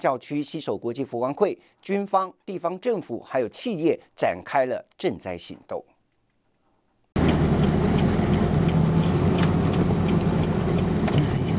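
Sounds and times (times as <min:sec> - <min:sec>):
speech: 0:00.0 - 0:05.9
heavy military truck engine rumbling on an earthquake-damaged road in Mindanao: 0:07.2 - 0:11.5.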